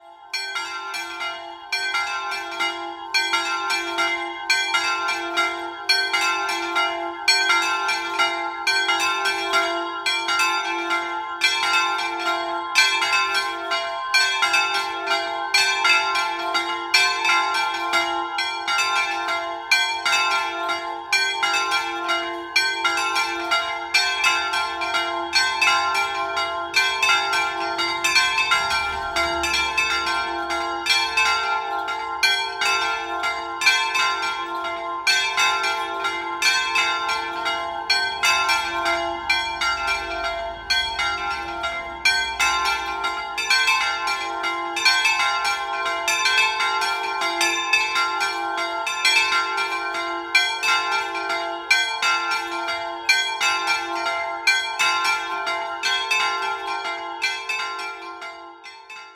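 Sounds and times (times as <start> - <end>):
bells ringing in Ciago: 0.0 - 59.1.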